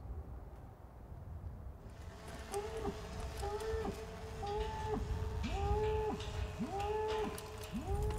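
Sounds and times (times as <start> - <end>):
hooves and herd noise: 1.9 - 8.1
cattle lowing: 2.2 - 8.1.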